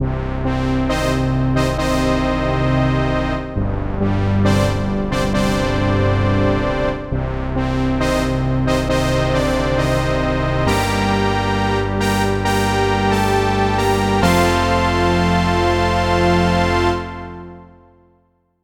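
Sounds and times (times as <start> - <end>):
brass section playing: 0.0 - 17.8.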